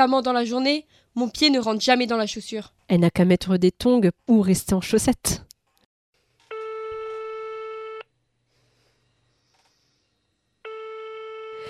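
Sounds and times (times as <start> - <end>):
speech: 0.0 - 5.5
telephone tone of an incoming call: 6.5 - 8.1, 10.6 - 11.6.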